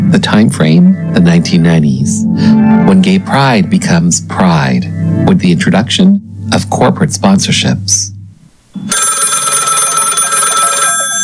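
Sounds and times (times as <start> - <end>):
speech: 0.1 - 8.1
telephone bell ringing: 8.8 - 11.2.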